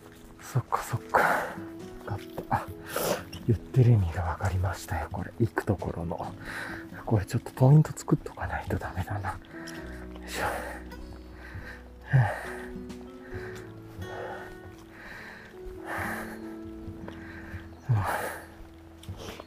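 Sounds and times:
heavy labored panting: 0:01.1 - 0:03.3, 0:06.3 - 0:07.0, 0:09.4 - 0:19.4
sharp gasps: 0:02.6 - 0:03.4, 0:06.4 - 0:06.9, 0:09.6 - 0:16.6
speech: 0:03.5 - 0:10.9.

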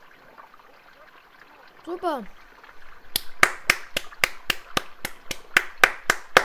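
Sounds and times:
speech: 0:01.8 - 0:02.4
rhythmic hand clapping: 0:03.2 - 0:06.4.

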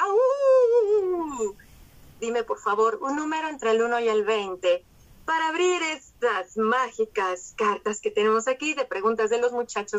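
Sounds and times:
person howling in imitation of a dog or wolf: 0:00.0 - 0:01.5
speech: 0:02.2 - 0:09.9.

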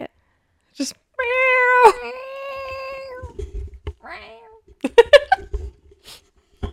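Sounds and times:
speech: 0:00.8 - 0:02.0
cat meowing indoors: 0:01.2 - 0:03.4, 0:04.0 - 0:04.7.

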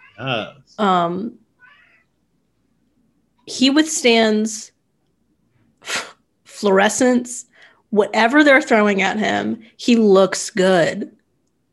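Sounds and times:
pet cat meowing loudly: 0:00.0 - 0:00.6, 0:01.6 - 0:02.0
speech: 0:00.2 - 0:01.4, 0:03.5 - 0:04.8, 0:05.8 - 0:11.2.

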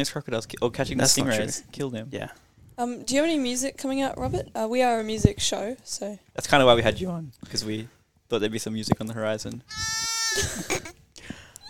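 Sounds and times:
speech: 0:00.0 - 0:10.9
sheep bleating in a wavering nasal cry: 0:09.7 - 0:10.4.

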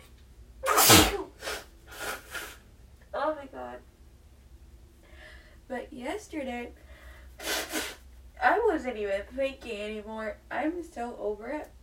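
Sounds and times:
person sneezing: 0:00.6 - 0:02.6, 0:07.4 - 0:08.0
speech: 0:05.7 - 0:06.8, 0:08.5 - 0:11.8.

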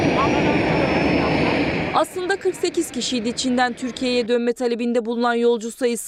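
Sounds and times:
engines of a giant Turkish Armed Forces cargo aircraft converted into a hospital roaring: 0:00.0 - 0:04.4
speech: 0:02.0 - 0:06.0.

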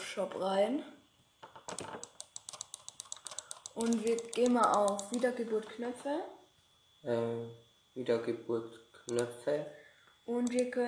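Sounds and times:
speech: 0:00.2 - 0:01.0, 0:03.8 - 0:06.4, 0:07.0 - 0:10.8
computer keyboard or mouse clicks in a computer game: 0:01.5 - 0:05.8, 0:10.4 - 0:10.7.

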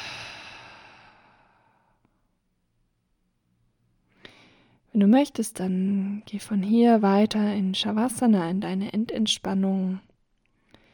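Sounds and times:
long soft exhale through the mouth during a yoga breathing exercise: 0:00.0 - 0:02.0
short sharp breath: 0:00.0 - 0:02.0
speech: 0:04.9 - 0:10.1.

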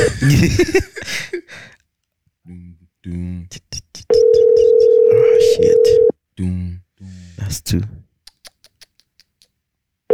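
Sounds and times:
speech: 0:00.2 - 0:01.8
telephone ringing tone of an international call: 0:04.1 - 0:06.1.

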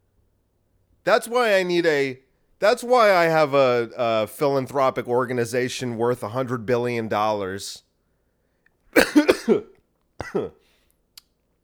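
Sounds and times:
speech: 0:01.0 - 0:07.8, 0:08.9 - 0:10.6
person coughing after saliva went down the wrong pipe: 0:09.0 - 0:10.6.

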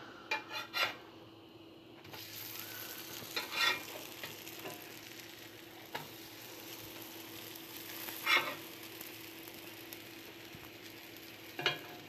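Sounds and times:
utensil clinking and scraping against the pan: 0:00.3 - 0:01.0, 0:03.2 - 0:04.8, 0:08.1 - 0:08.7
chocolate chip pancake batter sizzling in a skillet: 0:02.0 - 0:12.0.

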